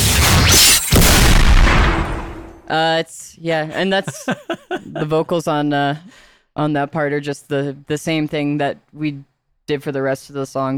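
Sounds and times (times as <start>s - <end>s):
big booming gunshot sound effect with rumbling roar: 0.0s - 2.6s
speech: 2.7s - 10.7s
laughter: 3.7s - 5.3s.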